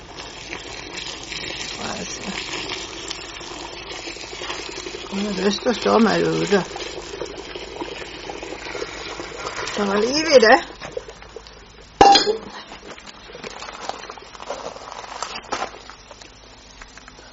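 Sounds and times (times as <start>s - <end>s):
20 litres of steaming boiling water being poured in a continuous stream: 0.0s - 16.4s
speech: 2.0s - 2.6s, 5.1s - 6.8s, 9.8s - 10.7s.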